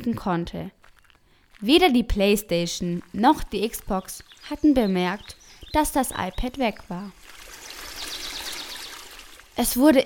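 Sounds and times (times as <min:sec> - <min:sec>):
speech: 0:00.0 - 0:00.9, 0:01.6 - 0:07.4, 0:09.6 - 0:10.0
small stream trickling: 0:03.1 - 0:09.9.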